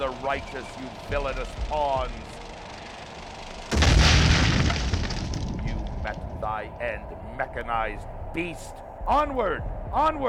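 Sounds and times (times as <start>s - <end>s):
speech: 0.0s - 2.4s, 6.0s - 10.2s
sustained roaring crackling rumble of fire: 0.0s - 10.2s
incendiary charge exploding during a battle: 3.7s - 6.4s.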